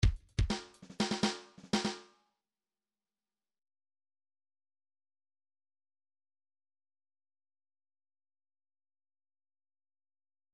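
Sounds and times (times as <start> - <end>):
pop drum fill: 0.0 - 2.0.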